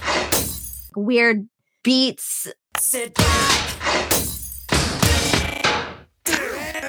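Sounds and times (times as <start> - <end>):
glass breaking crashes in a song: 0.0 - 0.9, 4.0 - 5.3
speech: 1.0 - 4.4.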